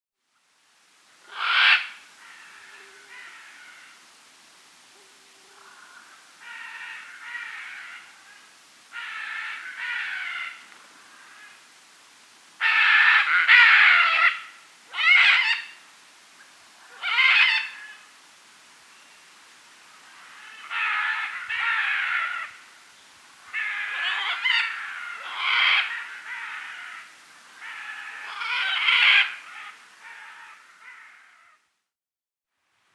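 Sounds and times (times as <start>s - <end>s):
red-and-green macaw Ara chloroptera calling: 1.2s - 4.0s, 5.0s - 11.6s, 12.6s - 15.8s, 16.4s - 18.1s, 19.9s - 22.8s, 23.4s - 31.6s.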